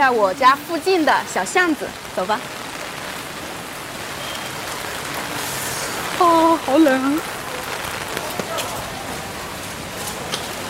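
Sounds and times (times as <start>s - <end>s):
speech: 0.0s - 2.6s, 6.2s - 7.4s
heavy rain pouring on a cold day: 0.0s - 10.6s.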